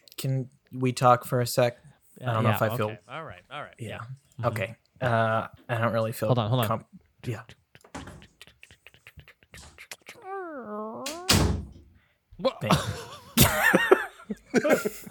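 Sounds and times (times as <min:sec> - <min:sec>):
speech: 0:00.2 - 0:07.6, 0:12.4 - 0:13.8, 0:14.6 - 0:15.1
drawn-out sliding voice: 0:02.2 - 0:04.6, 0:08.0 - 0:11.5
person chuckling: 0:07.5 - 0:11.3, 0:12.5 - 0:15.1
door shutting: 0:07.8 - 0:08.4, 0:11.0 - 0:11.9.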